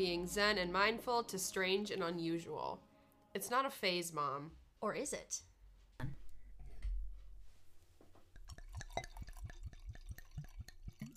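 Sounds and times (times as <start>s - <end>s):
speech: 0.0s - 6.1s
drink pouring into a glass with glugs: 8.4s - 11.1s.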